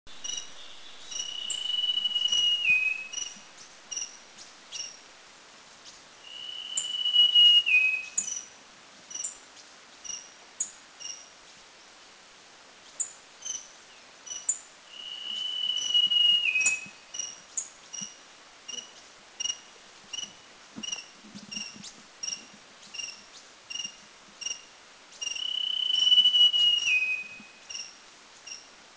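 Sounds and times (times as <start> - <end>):
Dark-backed sibia singing at Doi Lang in Thailand: 0.1 - 5.0, 6.3 - 8.5, 13.0 - 18.1, 25.2 - 27.9.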